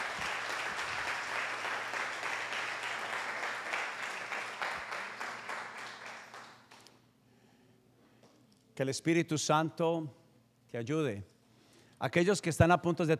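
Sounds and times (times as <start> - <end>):
congregation applauding: 0.0 - 6.9
speech: 8.8 - 11.3, 12.0 - 13.1.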